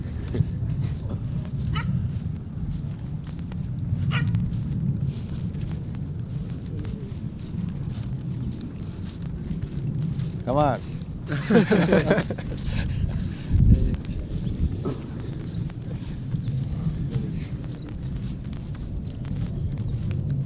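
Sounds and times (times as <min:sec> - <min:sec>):
faint shuffling footsteps: 0:00.0 - 0:20.4
low rumbling background: 0:00.0 - 0:20.4
dog barks: 0:01.6 - 0:02.1, 0:04.0 - 0:04.4
speech: 0:10.5 - 0:13.0
laughter: 0:11.2 - 0:13.9.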